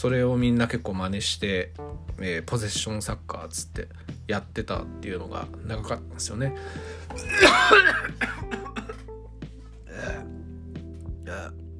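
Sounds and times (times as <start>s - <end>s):
speech: 0.0s - 8.6s
man coughing hard: 7.1s - 9.0s.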